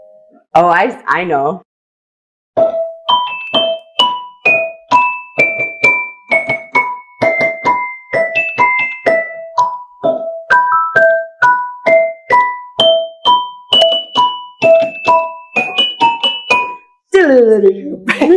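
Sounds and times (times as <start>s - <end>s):
speech: 0.4s - 1.7s
celesta keys striking metal bars in a bright tune: 2.6s - 17.0s.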